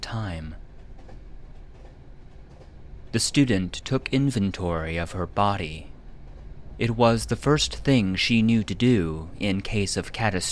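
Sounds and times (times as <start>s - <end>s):
freight train with boxcars rolling along rails: 0.0s - 10.4s
faint rhythmic clatter of freight train wheels on rails: 0.7s - 4.4s
speech: 3.1s - 5.9s, 6.8s - 10.4s.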